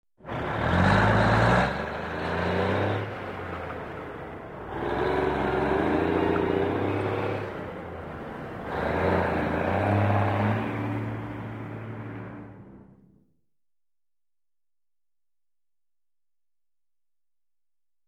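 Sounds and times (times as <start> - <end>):
tractor running: 0.2 - 13.2.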